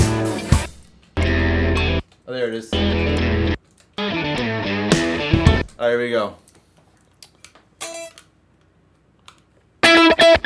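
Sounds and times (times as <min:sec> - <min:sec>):
electric guitar through a heavy distortion effect: 0:00.0 - 0:02.0, 0:02.8 - 0:05.7, 0:09.8 - 0:10.4
speech: 0:02.3 - 0:03.5, 0:05.8 - 0:06.4.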